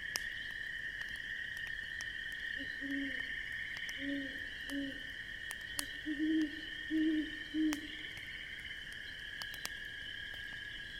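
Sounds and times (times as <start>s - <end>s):
campfire crackling: 0.0s - 10.9s
solitary owl hooting on a crisp autumn evening in the Midwest: 2.6s - 3.3s, 4.0s - 5.0s, 6.0s - 8.0s.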